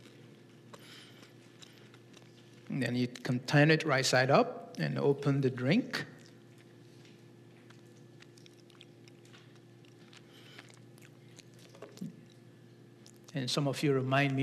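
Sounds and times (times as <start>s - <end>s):
audience chewing small communion bread with crunchy clicks: 0.0s - 3.4s, 5.9s - 13.4s
steady low room hum: 0.0s - 14.4s
speech: 2.7s - 6.1s, 13.4s - 14.4s.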